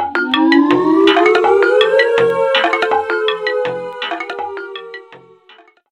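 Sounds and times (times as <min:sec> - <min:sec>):
savanna alarm: 0:00.1 - 0:05.8.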